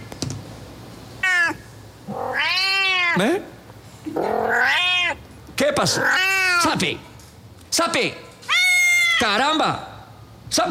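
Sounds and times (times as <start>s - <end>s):
cat meowing: 1.2s - 3.2s, 4.1s - 5.2s, 5.9s - 6.7s, 8.5s - 9.3s
speech: 3.2s - 4.9s, 5.7s - 7.1s, 7.8s - 8.2s, 9.2s - 9.9s.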